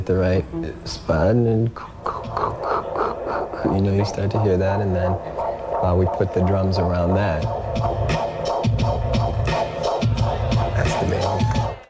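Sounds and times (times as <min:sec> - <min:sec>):
speech: 0:00.0 - 0:08.2
hum: 0:01.4 - 0:09.5
fast heartbeat picked up through a microphone pressed to a belly: 0:01.8 - 0:11.8.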